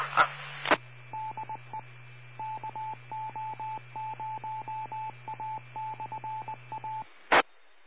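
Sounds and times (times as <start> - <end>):
low hum: 0.0 - 7.1
short electronic telephone dialing tones: 1.1 - 7.0.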